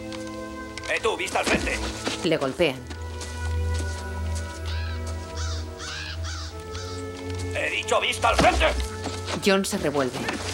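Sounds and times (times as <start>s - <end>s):
speech: 0.9s - 3.0s, 7.6s - 10.5s
crows cawing over a meadow: 4.5s - 7.5s.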